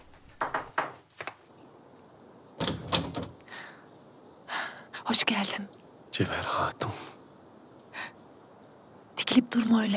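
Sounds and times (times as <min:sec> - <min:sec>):
knocking on the wooden door of a single-storey house: 0:00.1 - 0:01.0
speech: 0:05.1 - 0:07.0, 0:09.4 - 0:09.9.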